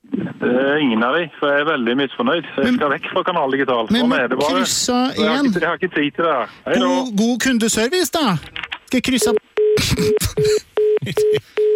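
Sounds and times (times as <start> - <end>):
speech: 0.4 - 11.5
phone disconnect tone beeps after a call is cut off: 9.2 - 10.2.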